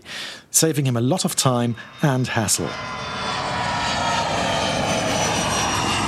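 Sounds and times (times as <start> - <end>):
speech: 0.6 - 3.2
airplane engine flying overhead: 1.0 - 6.0.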